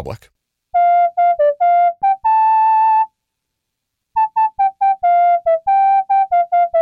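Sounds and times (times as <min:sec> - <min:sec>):
speech: 0:00.0 - 0:00.3
synthesized MIDI whistle melody: 0:00.8 - 0:03.1, 0:04.2 - 0:06.7.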